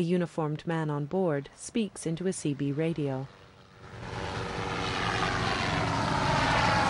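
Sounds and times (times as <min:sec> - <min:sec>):
speech: 0:00.0 - 0:04.2
helicopter flying across the sky above open water: 0:01.5 - 0:06.8.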